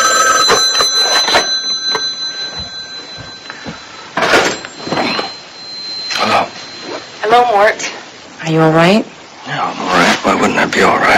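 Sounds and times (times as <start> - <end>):
telephone bell ringing: 0.0 - 8.0
speech: 7.3 - 11.1.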